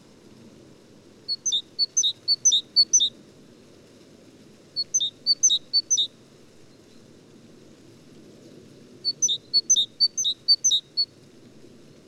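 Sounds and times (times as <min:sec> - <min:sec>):
great tit singing teacher phrases: 0:01.3 - 0:03.1, 0:04.8 - 0:06.1, 0:09.1 - 0:10.9.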